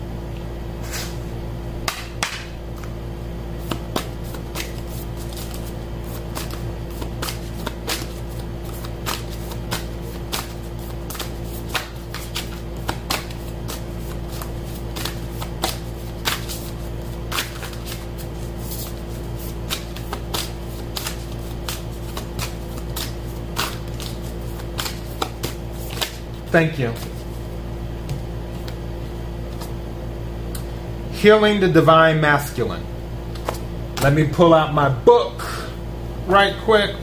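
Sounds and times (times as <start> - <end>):
Isis oracle cards shuffled by hand: 3.6 - 27.5, 28.1 - 28.8, 29.4 - 29.8, 33.3 - 34.2
speech: 26.6 - 27.2, 31.2 - 32.9, 34.0 - 35.4, 36.4 - 37.0.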